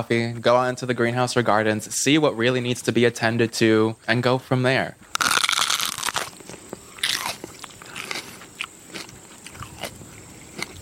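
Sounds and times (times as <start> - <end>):
speech: 0.0 - 5.1
crisp crunchy biting into a fresh garden pepper: 5.1 - 10.8.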